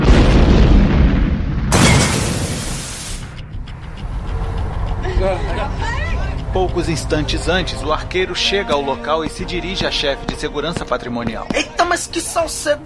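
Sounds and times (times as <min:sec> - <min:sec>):
loud explosion destroying a warehouse wall: 0:00.0 - 0:03.4
lingering low rumble after the explosion: 0:00.1 - 0:08.7
speech: 0:06.6 - 0:12.8.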